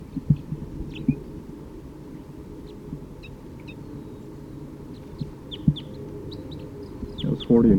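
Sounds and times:
male bird chittering: 2.6s - 7.6s
speech: 7.5s - 7.7s.

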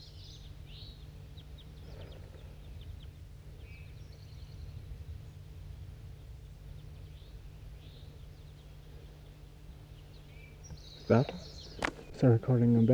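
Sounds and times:
steady low hum: 0.0s - 12.9s
flock of crossbills giving flight calls: 9.2s - 12.9s
speech: 11.1s - 11.6s, 12.2s - 12.9s.

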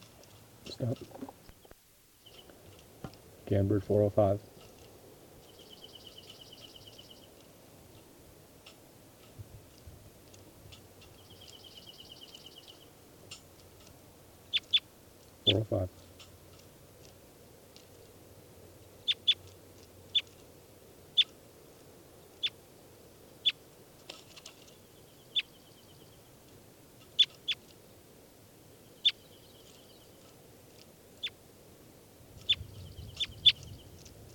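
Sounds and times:
numbered study bird giving sharp high chirping calls: 0.6s - 2.8s, 4.4s - 8.1s, 10.7s - 13.5s, 14.4s - 14.9s, 19.0s - 19.5s, 20.1s - 20.4s, 22.2s - 22.6s, 24.3s - 26.4s, 27.0s - 27.7s, 28.7s - 30.4s, 31.2s - 31.4s, 32.4s - 34.1s
speech: 0.8s - 1.4s, 3.5s - 4.5s.

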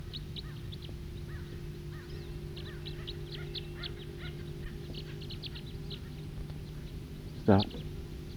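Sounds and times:
loud far-off bird calling: 0.1s - 8.3s
speech: 7.5s - 7.8s.

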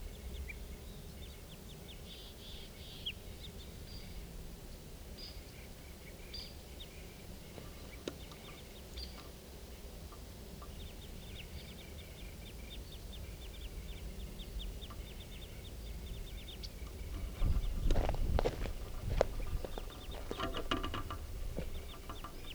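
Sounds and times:
constant low background noise: 0.0s - 22.5s
crossbill flock chipping from a tree above a camp in a clearing: 17.1s - 22.5s.

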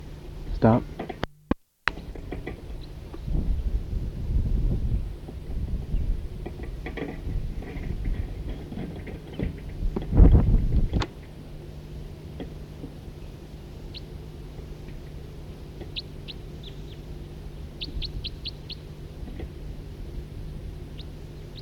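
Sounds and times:
steady low hum: 0.0s - 21.6s
speech: 0.6s - 1.0s
two birds calling with two different call types: 15.8s - 18.9s, 20.9s - 21.6s.

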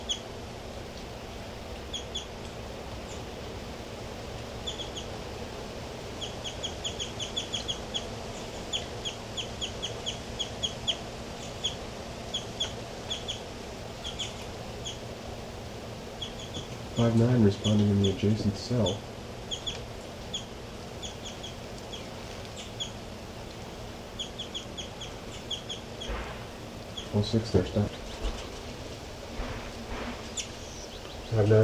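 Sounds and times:
bird chirping: 0.0s - 0.3s, 1.8s - 2.4s, 3.0s - 3.4s, 4.6s - 5.2s, 6.2s - 15.1s, 16.1s - 23.0s, 24.1s - 28.7s, 29.4s - 31.6s
steady low hum: 0.0s - 31.6s
speech: 17.0s - 19.1s, 27.2s - 28.0s, 31.4s - 31.6s.

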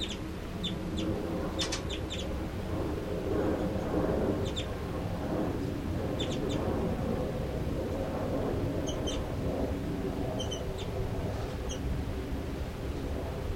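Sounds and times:
bird chitter calls: 0.0s - 2.4s, 4.4s - 4.8s, 6.2s - 6.6s, 8.8s - 9.3s, 10.4s - 11.0s, 11.6s - 11.8s
low rumble: 0.0s - 13.5s.

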